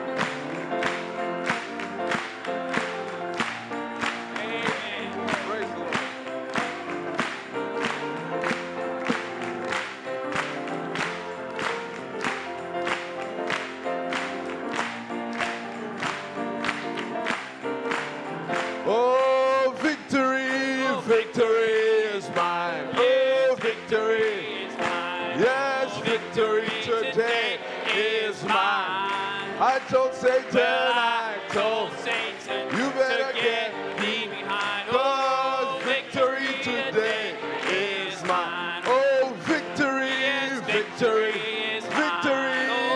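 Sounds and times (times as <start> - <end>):
audience clapping hands in a steady even rhythm: 0.0 - 42.9
sustained organ-like music: 0.0 - 42.9
singing: 3.4 - 7.9, 18.8 - 42.9.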